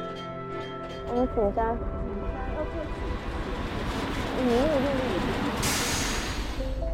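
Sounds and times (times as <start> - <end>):
sightseeing tram rumbling along rails on a century-old line: 0.1 - 6.9
air brake hiss: 5.6 - 6.9.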